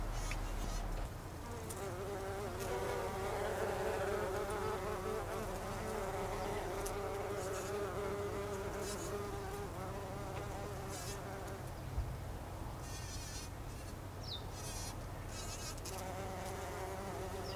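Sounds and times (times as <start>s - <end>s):
bumblebees buzzing with a wobbling drone: 0.2s - 11.9s, 12.8s - 17.5s.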